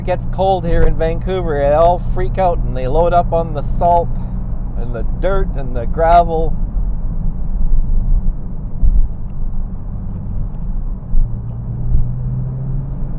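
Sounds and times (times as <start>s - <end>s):
speech: 0.0s - 6.6s
car engine and tire rumble on road: 0.0s - 13.1s
car bumps on road: 3.0s - 13.1s.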